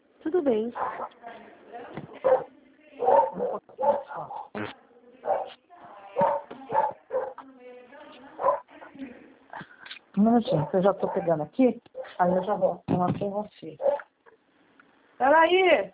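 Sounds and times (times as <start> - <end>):
speech: 0.2 - 1.2, 10.2 - 14.0, 15.2 - 15.9
dog barking at a country property: 0.8 - 1.2, 2.2 - 4.5, 5.2 - 5.6, 6.2 - 7.4, 8.4 - 8.7, 10.4 - 11.4, 12.0 - 12.8, 13.8 - 14.1.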